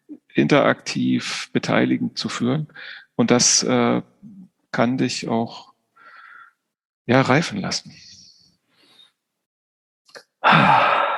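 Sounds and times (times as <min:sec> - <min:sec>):
speech: 0:00.4 - 0:04.1, 0:04.7 - 0:05.7, 0:07.1 - 0:08.1, 0:10.5 - 0:10.8
man breathing into his microphone: 0:06.0 - 0:06.6, 0:10.4 - 0:11.1.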